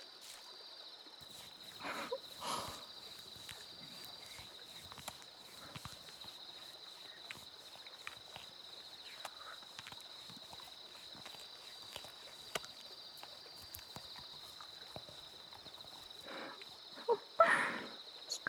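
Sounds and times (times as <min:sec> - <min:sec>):
faint constant hiss: 0:01.1 - 0:18.4
soap lathered into foam with wet squishes and crackling pops: 0:01.2 - 0:17.1.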